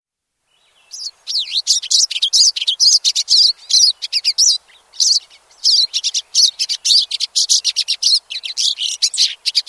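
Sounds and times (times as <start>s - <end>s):
pine siskin twittering: 0.7s - 9.6s.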